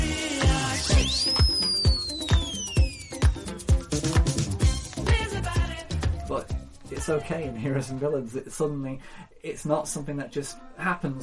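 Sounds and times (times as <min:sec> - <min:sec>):
upbeat 80s party pop track with punchy steady drums: 0:00.0 - 0:07.9
swooping whistle from an 80s party pop song: 0:00.6 - 0:04.2
speech: 0:07.0 - 0:11.2.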